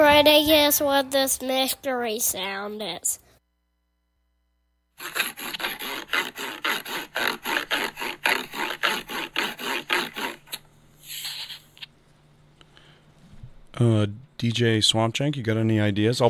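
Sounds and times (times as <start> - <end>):
speech: 0.1 - 3.2, 5.0 - 5.6, 13.8 - 16.2
Kinect sensor rubbed back and forth on cardboard: 5.0 - 11.7.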